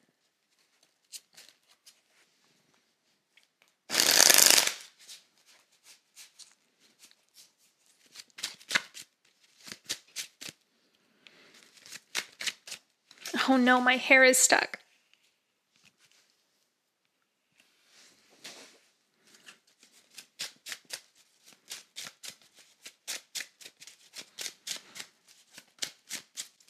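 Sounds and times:
tarot cards being shuffled before a reading: 0.6 - 2.1, 3.6 - 10.6, 11.5 - 13.4, 18.4 - 26.6
speech: 13.5 - 14.8.

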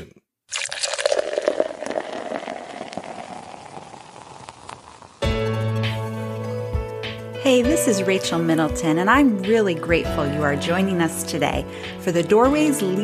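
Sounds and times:
liquid pouring into a glass: 0.5 - 5.3
steady music: 5.2 - 13.0
speech: 7.5 - 13.0.

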